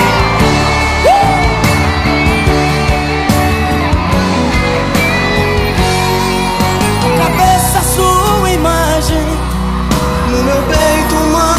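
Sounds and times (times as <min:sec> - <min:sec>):
crowd yelling and whooping: 0:00.0 - 0:11.5
thumping live music: 0:00.0 - 0:11.5.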